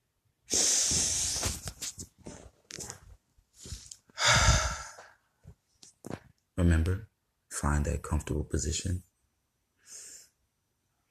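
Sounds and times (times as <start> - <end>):
deep breaths in a calming stress-relief breathing exercise: 0.5 - 1.6, 3.5 - 5.5, 9.8 - 10.4
speech: 6.6 - 9.1.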